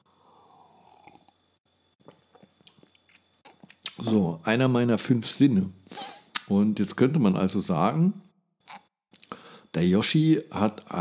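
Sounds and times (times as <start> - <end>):
person sipping coffee: 0.0 - 4.1
speech: 4.0 - 8.3, 9.8 - 11.0.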